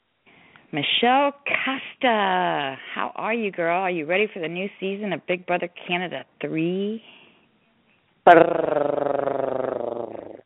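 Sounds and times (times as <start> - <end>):
speech: 0.7 - 7.2, 8.2 - 8.9
person imitating a cat purr with a rolling trill: 8.3 - 10.4.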